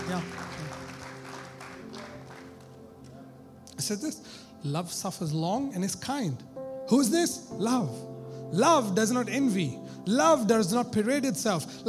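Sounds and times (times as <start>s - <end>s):
crowd clapping: 0.0s - 3.2s
speech: 3.8s - 11.8s.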